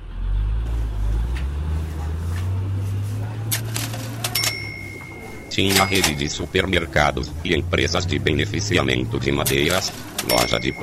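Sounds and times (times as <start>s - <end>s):
heavy truck engines rumbling as trucks roll past: 0.0s - 10.8s
faint metallic clinks: 3.7s - 6.6s, 9.5s - 10.8s
speech: 5.6s - 10.8s.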